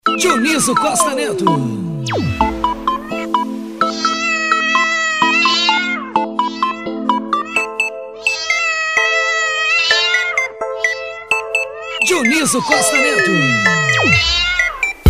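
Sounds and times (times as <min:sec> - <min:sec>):
speech: 0:00.2 - 0:02.6, 0:12.4 - 0:14.6
steady ticking pulse: 0:01.0 - 0:03.7
cat meowing: 0:02.1 - 0:15.0.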